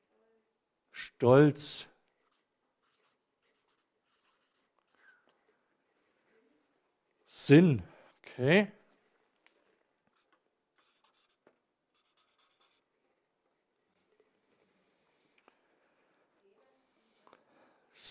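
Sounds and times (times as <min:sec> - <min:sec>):
speech: 0:01.1 - 0:01.9, 0:07.5 - 0:08.8
pen scratching across paper: 0:02.2 - 0:05.5, 0:10.1 - 0:12.9.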